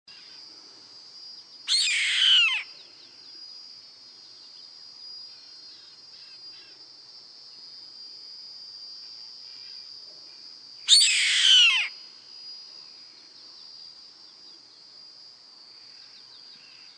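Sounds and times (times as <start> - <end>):
high insect drone: 0.1 - 16.9
yellow-headed caracara Milvago chimachima harsh hoarse descending screams: 1.7 - 2.7, 10.9 - 11.9.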